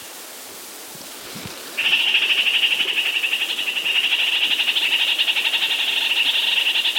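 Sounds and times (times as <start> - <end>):
red-crowned parakeet calling: 1.7 - 6.8.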